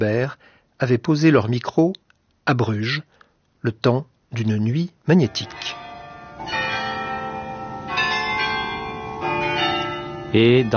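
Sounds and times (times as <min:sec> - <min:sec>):
speech: 0:00.0 - 0:05.8, 0:10.3 - 0:10.7
many church bells ringing together: 0:05.1 - 0:10.7.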